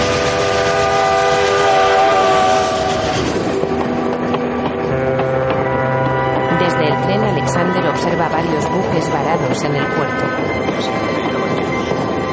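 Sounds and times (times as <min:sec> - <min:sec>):
train passing through a tunnel: 0:00.0 - 0:12.3
sustained horn-like tone: 0:00.1 - 0:03.2, 0:04.8 - 0:10.6
speech: 0:09.6 - 0:10.3.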